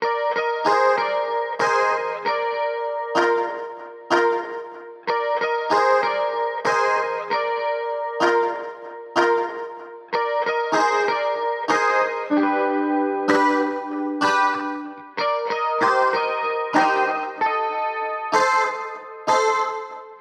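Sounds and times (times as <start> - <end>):
soft-touch guitar in C minor: 0.0 - 20.1.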